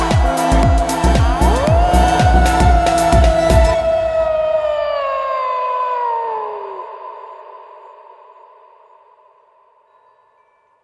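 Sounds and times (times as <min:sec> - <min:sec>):
wolf howling: 0:00.0 - 0:08.6.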